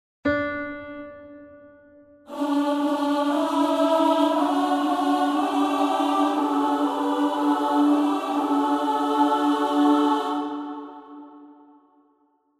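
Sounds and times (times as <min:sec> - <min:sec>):
amen sung by three voices: 0:02.3 - 0:12.1.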